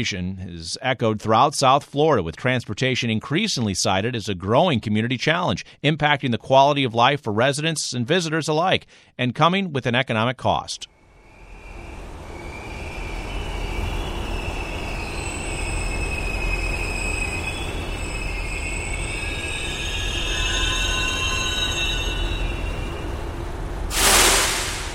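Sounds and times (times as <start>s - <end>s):
speech: 0.0s - 11.0s
Metrorail train rolling into the station in South Florida: 11.1s - 24.9s
train wheel squeals: 11.2s - 23.2s
hiss of released air from train: 23.9s - 24.9s.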